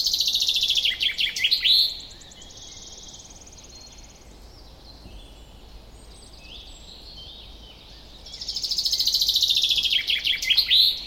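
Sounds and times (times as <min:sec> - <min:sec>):
common chaffinch Fringilla coelebs singing: 0:00.0 - 0:11.0.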